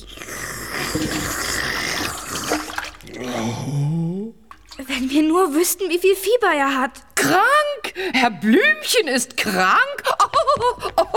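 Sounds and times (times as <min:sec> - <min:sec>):
water sloshing and gurgling as it is drunk from a bucket: 0:00.0 - 0:03.8, 0:04.4 - 0:05.4
rising voiced contented-sounding groan: 0:00.8 - 0:04.4
speech: 0:05.4 - 0:11.1.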